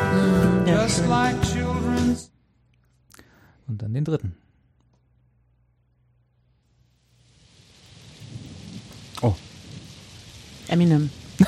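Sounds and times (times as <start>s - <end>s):
speech: 0.7s - 2.3s, 3.7s - 4.4s, 9.2s - 9.4s, 10.7s - 11.4s
rain falling: 6.7s - 11.4s
rolling thunder: 7.4s - 11.4s.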